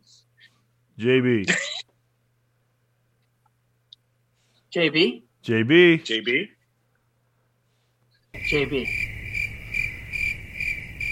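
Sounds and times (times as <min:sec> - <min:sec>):
speech: 0:01.0 - 0:01.7, 0:04.8 - 0:06.6, 0:08.5 - 0:09.0
cricket chirping in pulsing trills: 0:08.3 - 0:11.1.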